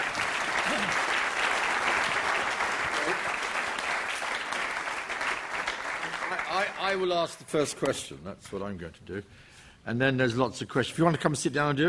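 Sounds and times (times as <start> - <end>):
room full of people clapping: 0.0 - 7.1
speech: 6.9 - 11.8.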